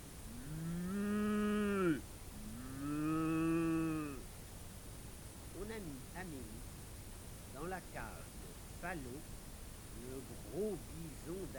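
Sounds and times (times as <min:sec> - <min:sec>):
cow mooing: 0:00.3 - 0:04.2
speech: 0:08.8 - 0:09.4, 0:10.0 - 0:11.5.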